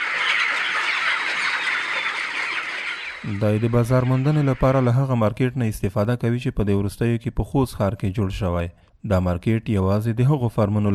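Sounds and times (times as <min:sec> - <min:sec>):
flock of chickens clucking on a poultry farm: 0:00.0 - 0:05.1
speech: 0:03.2 - 0:10.9.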